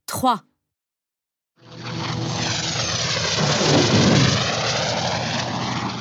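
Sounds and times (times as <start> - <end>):
speech: 0.2 - 0.5
airplane engine droning: 1.8 - 6.0.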